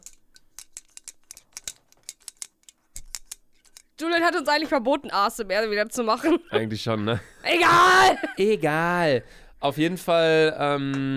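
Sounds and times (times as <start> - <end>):
small metal tab rattling inside a shaken drink can: 0.0 - 4.0
speech: 4.1 - 11.1.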